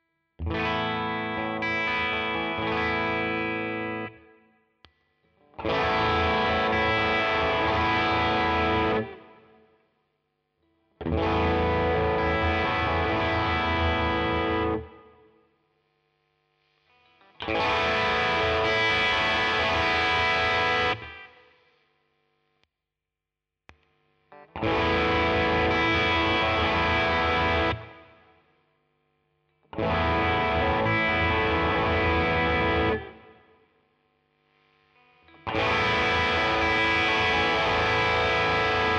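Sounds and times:
Stratocaster electric guitar tone settings: 0.4s - 4.4s, 5.4s - 9.5s, 11.0s - 15.2s, 16.9s - 21.5s, 24.3s - 28.2s, 29.7s - 33.4s, 35.0s - 38.9s.

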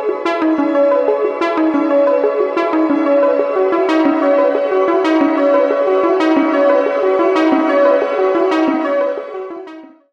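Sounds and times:
plate shimmer: 0.2s - 9.6s.

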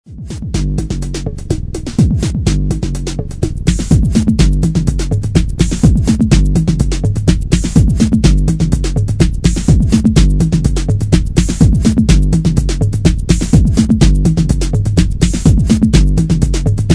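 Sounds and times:
808 drum machine bass: 0.0s - 16.9s.

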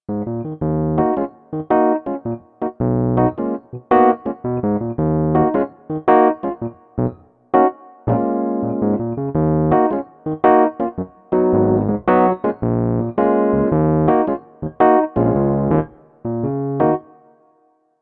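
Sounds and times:
Roland RD2000 tine electric piano in 1975 style: 0.1s - 17.4s.

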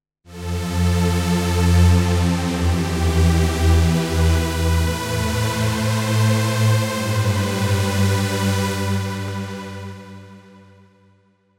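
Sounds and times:
JP-8000 synthesizer pad: 0.3s - 10.7s.

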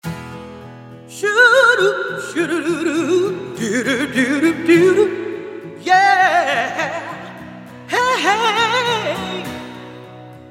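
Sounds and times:
vocal effects processor reverb: 1.0s - 10.3s.

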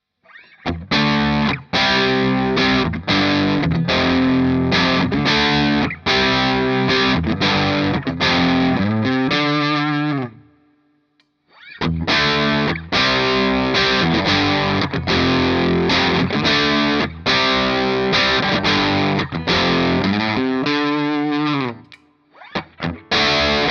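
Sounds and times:
rock riff: 0.3s - 10.5s, 11.5s - 23.6s.

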